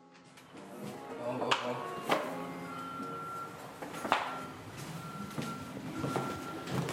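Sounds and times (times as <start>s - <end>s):
busy street background: 0.2s - 6.9s
truck reversing alarm beeping: 2.4s - 6.9s.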